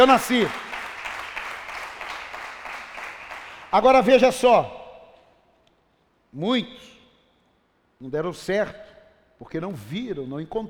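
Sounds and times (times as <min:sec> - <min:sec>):
speech: 0:00.0 - 0:00.6, 0:03.7 - 0:04.8, 0:06.3 - 0:06.9, 0:08.0 - 0:08.8, 0:09.4 - 0:10.6
church congregation applauding: 0:00.0 - 0:04.2.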